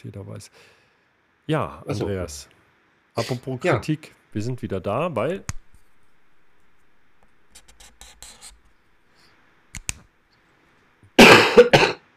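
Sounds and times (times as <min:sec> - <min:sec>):
speech: 0:00.0 - 0:00.8, 0:01.5 - 0:02.6, 0:03.2 - 0:05.6
faint scratching: 0:04.4 - 0:09.5
loud harsh cough: 0:11.2 - 0:12.1.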